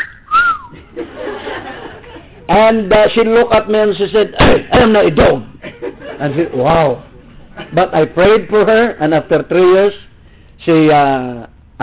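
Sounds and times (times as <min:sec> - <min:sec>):
human whistle aimed at a woman passing by: 0:00.0 - 0:00.8
murmur of laughter: 0:00.7 - 0:02.5, 0:05.6 - 0:07.8
speech: 0:02.5 - 0:05.5, 0:06.2 - 0:07.1, 0:07.7 - 0:11.8.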